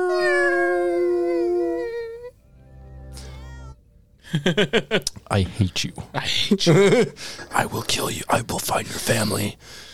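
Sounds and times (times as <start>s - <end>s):
cat meowing: 0.0s - 2.3s, 3.2s - 3.8s
cat yowling: 0.0s - 2.3s
speech: 4.3s - 9.9s.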